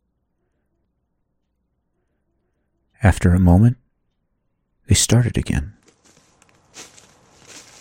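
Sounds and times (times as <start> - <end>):
speech: 3.0 - 3.8, 4.9 - 5.8
crunchy footsteps approaching through woods: 5.8 - 7.8.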